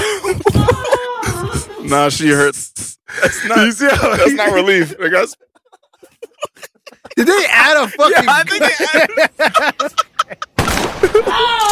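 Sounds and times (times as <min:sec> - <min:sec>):
laughter: 0:00.0 - 0:02.4, 0:03.1 - 0:11.7
speech: 0:01.9 - 0:05.6, 0:07.1 - 0:11.7
revolver gunshot: 0:10.6 - 0:11.3.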